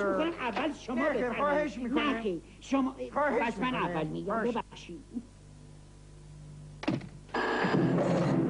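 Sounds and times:
speech: 0.0 - 5.3
telephone ringing: 7.3 - 8.4.

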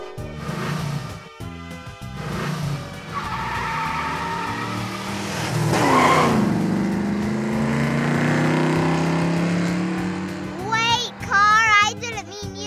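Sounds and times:
car engine revving with rising and falling pitch: 0.2 - 12.3
loud car tire skids and squeals: 2.2 - 11.7.

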